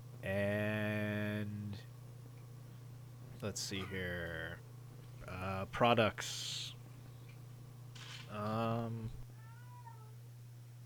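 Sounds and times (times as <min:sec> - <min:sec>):
low constant hum: 0:00.0 - 0:10.8
speech: 0:03.4 - 0:04.7, 0:05.3 - 0:06.6, 0:08.3 - 0:09.2
pet cat meowing: 0:09.4 - 0:10.2.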